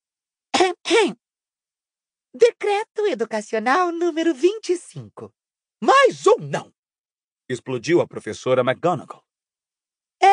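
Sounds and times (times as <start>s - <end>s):
person clearing throat in an exaggerated way: 0.6s - 1.2s
speech: 0.9s - 1.2s, 2.3s - 6.8s, 7.5s - 9.2s.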